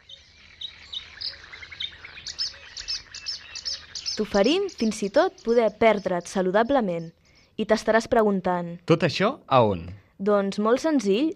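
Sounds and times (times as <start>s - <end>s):
small birds singing and chirping: 0.0s - 7.8s
speech: 4.2s - 11.3s.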